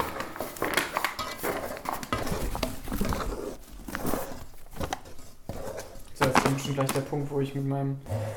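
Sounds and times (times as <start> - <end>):
spatula stirring thick dough with flour and cocoa powder in a bowl: 0.0 - 6.2
speech: 6.7 - 8.3.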